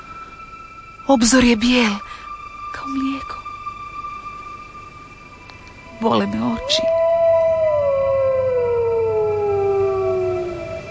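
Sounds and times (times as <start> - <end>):
low steady hum: 0.0 - 10.8
speech: 1.1 - 2.1, 6.0 - 7.0
wolf howling at dawn: 6.0 - 10.8.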